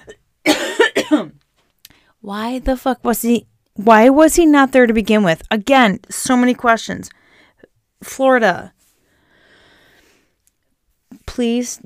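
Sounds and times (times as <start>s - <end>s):
person coughing: 0.0s - 1.4s
speech: 1.1s - 1.4s, 2.2s - 7.2s, 8.0s - 8.8s, 11.3s - 11.8s.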